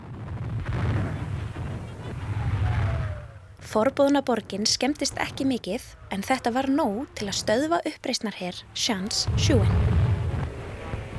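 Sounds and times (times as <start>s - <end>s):
bombs dropped on the Forbidden City in China exploding: 0.0s - 5.6s, 9.2s - 11.1s
speech: 3.7s - 10.0s.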